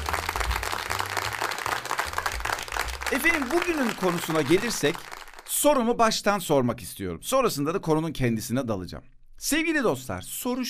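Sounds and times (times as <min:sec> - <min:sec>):
applause of many hands clapping together: 0:00.0 - 0:05.8
speech: 0:03.1 - 0:10.6.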